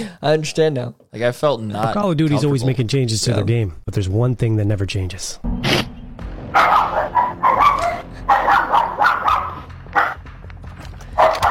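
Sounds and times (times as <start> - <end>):
speech: 0.0 - 5.9
low hum: 5.4 - 9.5
dog barking and yipping through a microphone in online game voice chat: 6.6 - 10.2, 11.2 - 11.4.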